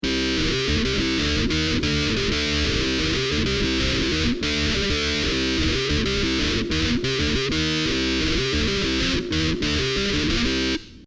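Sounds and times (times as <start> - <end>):
Hi NRG synth lead keys in fifths: 0.0 - 10.9.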